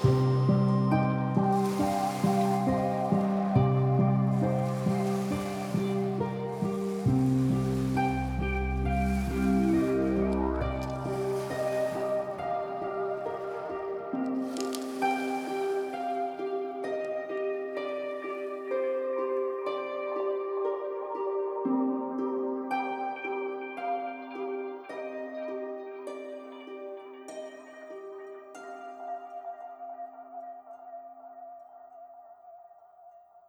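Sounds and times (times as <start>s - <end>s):
piano arpeggio: 0.0s - 24.8s.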